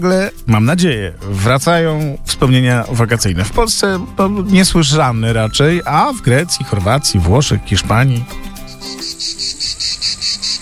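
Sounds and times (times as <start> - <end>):
speech: 0.0 - 9.0
cicadas chirring: 5.0 - 10.6.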